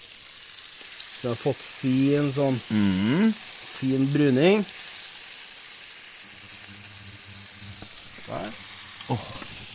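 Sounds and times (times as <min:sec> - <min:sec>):
veal entrecote sizzling in a frying pan with butter and garlic: 0:00.0 - 0:09.7
speech: 0:01.2 - 0:04.8, 0:09.1 - 0:09.4
soft low hum: 0:06.1 - 0:09.7.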